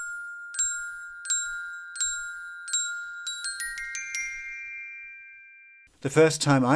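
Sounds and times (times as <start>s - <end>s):
glockenspiel playing a short melody: 0.0s - 5.9s
speech: 6.0s - 6.7s.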